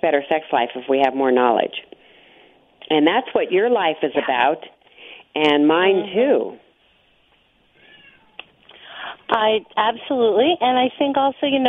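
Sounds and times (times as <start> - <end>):
speech: 0.0 - 1.9, 2.8 - 6.6, 9.3 - 11.6
cat yowling: 7.8 - 8.4.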